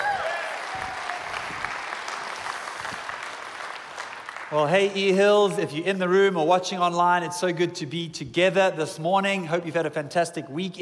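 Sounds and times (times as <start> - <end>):
audience in a room applauding after a reading: 0.0 - 5.0
speech: 4.5 - 10.8.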